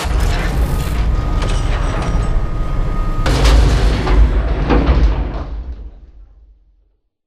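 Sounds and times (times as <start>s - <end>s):
lift moving up in a control room: 0.0s - 6.0s.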